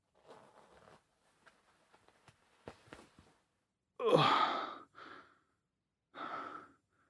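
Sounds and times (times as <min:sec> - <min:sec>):
trouser zipper pulled down: 0:00.1 - 0:01.0.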